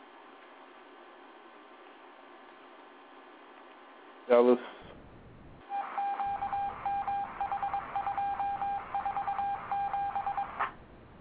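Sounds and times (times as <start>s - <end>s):
speech: 4.3s - 4.8s
electronic tone keying on and off like Morse code over a phone line: 5.7s - 10.6s.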